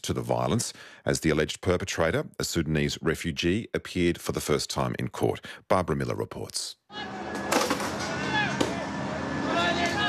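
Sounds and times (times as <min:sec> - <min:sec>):
speech: 0:00.0 - 0:07.2
street riot crowd shouting in Northern Ireland: 0:06.9 - 0:10.0.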